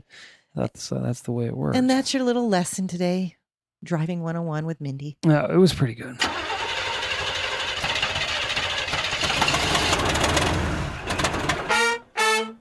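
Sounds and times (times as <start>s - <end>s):
speech: 0.1s - 6.4s
car engine cranking and struggling to start: 6.2s - 11.8s.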